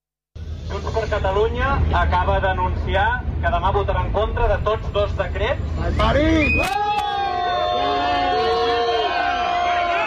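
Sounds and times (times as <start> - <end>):
speech: 0.8 - 7.1
protest crowd booing and shouting: 6.6 - 10.0.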